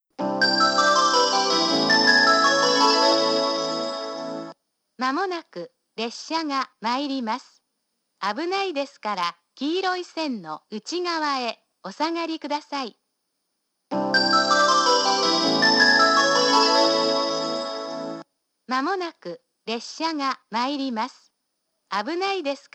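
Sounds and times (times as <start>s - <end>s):
down train approach melody at Yufuin station: 0.2s - 4.5s, 14.0s - 18.2s
woman making station announcement at Yufuin: 5.0s - 7.6s, 8.2s - 13.0s, 18.7s - 21.2s, 21.9s - 22.7s.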